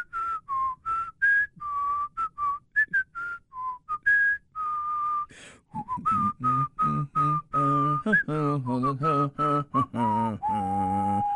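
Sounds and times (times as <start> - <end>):
person whistling a lively march-like tune: 0.0 - 11.3
person humming or singing the melody without words: 5.7 - 11.3.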